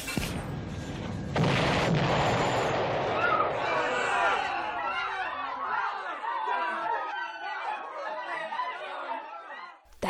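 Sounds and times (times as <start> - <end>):
machine explosion in a laboratory: 0.2 - 3.9
laughter: 3.9 - 9.8.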